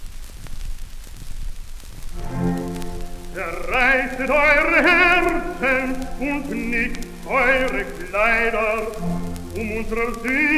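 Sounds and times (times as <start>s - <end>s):
low rumbling noise: 2.1s - 10.5s
speech: 3.4s - 10.5s.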